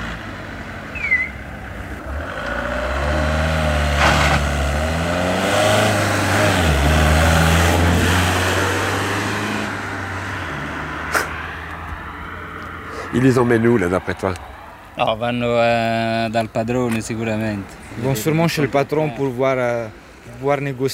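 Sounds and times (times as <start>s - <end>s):
car engine idling and revving at a roadside labour market: 0.0s - 14.6s
speech: 13.2s - 20.9s.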